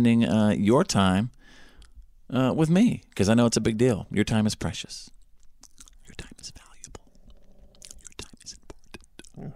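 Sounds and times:
speech: 0.0 - 1.4, 2.3 - 5.2, 6.2 - 6.6
wet mouth noises with lip smacks and clicks: 5.1 - 9.5
breathy whisper-like sounds: 5.9 - 9.5.

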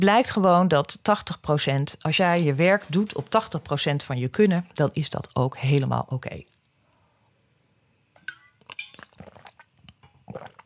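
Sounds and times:
speech: 0.0 - 6.6
glass clinking: 8.2 - 9.1
person slurping and swallowing a sip of water: 8.6 - 10.6.

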